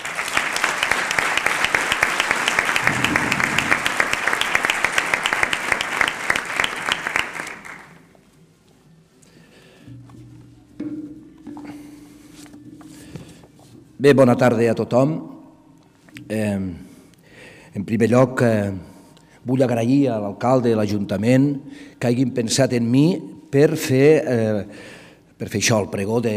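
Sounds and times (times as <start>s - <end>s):
dense crowd applause for a writer opening a fair: 0.0s - 8.0s
low hum: 2.8s - 4.6s
speech: 14.0s - 15.3s, 16.3s - 16.8s, 17.8s - 26.3s.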